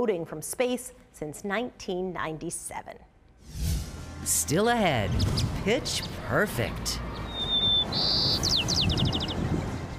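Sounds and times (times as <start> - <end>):
speech: 0.0 - 7.1, 7.9 - 9.1
bird singing: 7.1 - 9.5.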